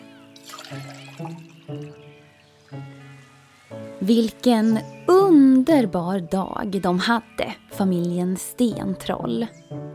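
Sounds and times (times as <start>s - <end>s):
juice pouring into a glass: 0.4s - 2.0s
speech: 0.7s - 1.8s, 4.1s - 9.6s.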